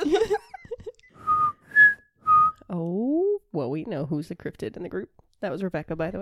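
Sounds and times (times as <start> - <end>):
laughter: 0.0 - 1.1
person whistling in imitation of a creature's three-pitch call: 1.1 - 2.6
speech: 3.8 - 6.2.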